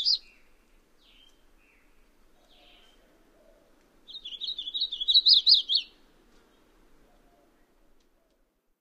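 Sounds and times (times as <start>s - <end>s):
painted redstart singing a rapid warble: 0.0s - 3.0s, 4.1s - 6.0s.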